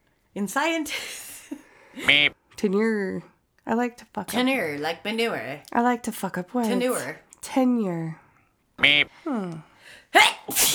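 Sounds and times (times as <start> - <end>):
speech: 0.4 - 8.2, 8.8 - 10.7
person sneezing: 10.2 - 10.7.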